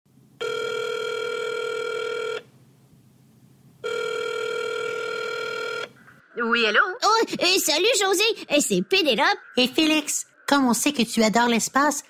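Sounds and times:
telephone ringback tone while a call is being placed: 0.4 - 2.5, 3.8 - 5.9
speech: 6.4 - 12.0.

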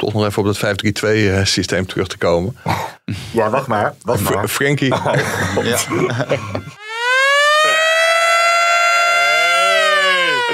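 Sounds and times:
speech: 0.0 - 6.8
laughter: 4.2 - 6.8, 7.4 - 10.5
civil defense air-raid siren wailing: 6.4 - 10.5.

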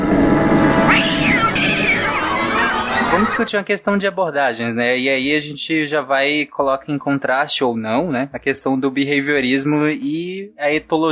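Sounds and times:
steady low hum: 0.0 - 11.0
cat meowing loudly: 0.8 - 3.2
speech: 3.2 - 11.0.

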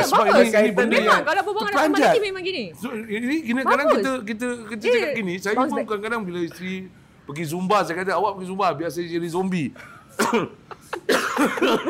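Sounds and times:
speech: 0.1 - 11.8
person coughing: 10.2 - 11.8
laughter: 10.6 - 11.8.

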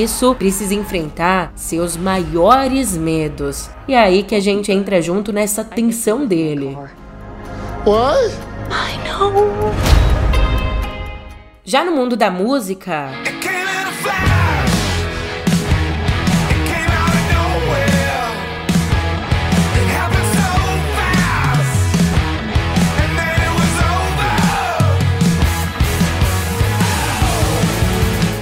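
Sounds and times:
speech: 0.0 - 7.0, 7.8 - 9.9, 11.7 - 14.4
loud rock song with drums, distorted guitars and shouted vocals: 13.2 - 28.4.

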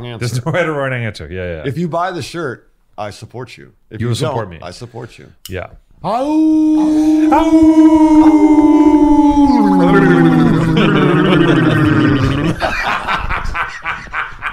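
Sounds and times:
speech: 0.0 - 13.1
coyote howling: 6.3 - 12.5
laughter: 6.8 - 14.5.

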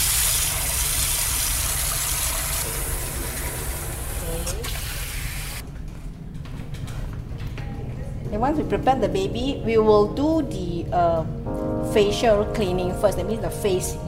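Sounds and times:
tap water running into a basin: 0.0 - 5.6
speech: 8.4 - 14.0.

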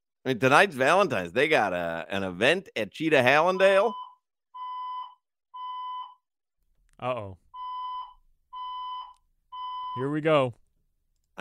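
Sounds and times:
speech: 0.2 - 4.0, 7.0 - 7.4, 10.0 - 10.6
fire alarm electronic beeps: 3.6 - 6.3, 7.6 - 10.1.

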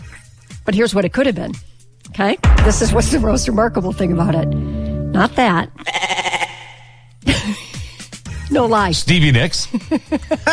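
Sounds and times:
speech: 0.7 - 6.1, 8.5 - 10.5
goat bleating: 5.8 - 6.9.

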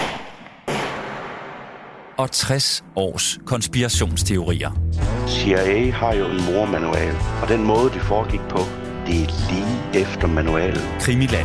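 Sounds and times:
gunshot: 0.0 - 2.2
speech: 2.2 - 11.4.

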